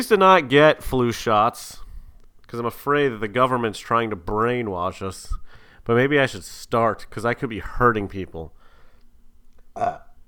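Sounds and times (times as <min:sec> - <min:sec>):
speech: 0:00.0 - 0:01.8, 0:02.5 - 0:08.6, 0:09.8 - 0:10.0
person burping: 0:09.7 - 0:10.2.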